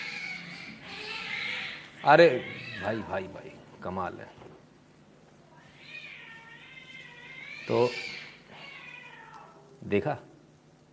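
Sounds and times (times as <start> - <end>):
feral cats fighting and yowling outside: 0.0 - 3.2, 5.5 - 9.8
speech: 2.0 - 4.5, 7.7 - 8.1, 9.8 - 10.3.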